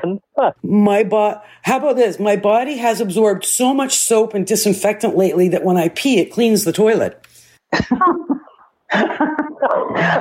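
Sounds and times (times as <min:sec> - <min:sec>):
speech: 0:00.0 - 0:10.1
harsh hacking coughs: 0:07.8 - 0:10.1.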